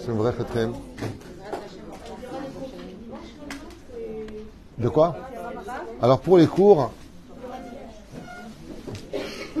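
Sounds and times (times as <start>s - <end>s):
speech: 0.0s - 1.3s, 4.8s - 5.3s, 6.0s - 7.0s
indistinct murmur of voices: 0.0s - 9.5s
chairs being shifted and set back in place: 7.5s - 9.5s.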